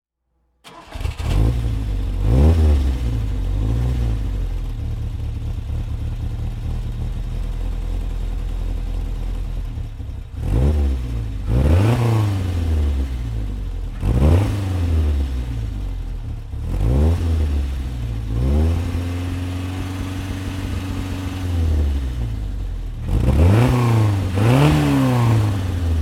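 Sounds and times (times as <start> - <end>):
1970 Ford Cortina 1600 E car: 0.6 - 26.0.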